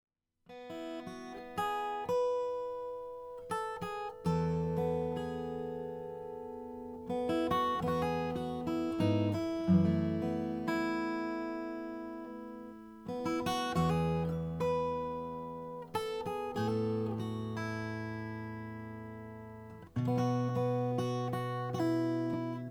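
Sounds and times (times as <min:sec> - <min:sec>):
custom Madagascar rosewood acoustic guitar: 0:00.5 - 0:22.7.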